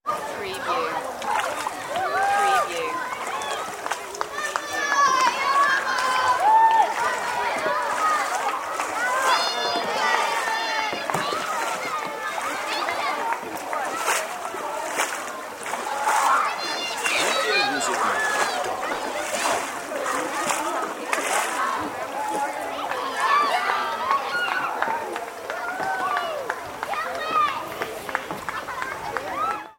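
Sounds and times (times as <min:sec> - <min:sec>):
lake summer camp ambience: 0:00.0 - 0:29.7.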